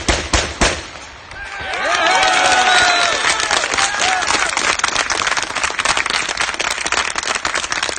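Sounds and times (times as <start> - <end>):
street crowd shouting: 1.3 - 4.5
street crowd clapping: 1.4 - 7.9.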